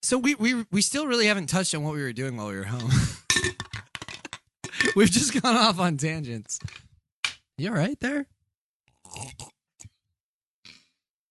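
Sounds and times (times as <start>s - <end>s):
speech: 0.0s - 3.9s, 4.8s - 6.9s, 7.6s - 8.4s, 9.1s - 9.5s
person sputtering and choking on cranberry juice: 8.9s - 9.6s.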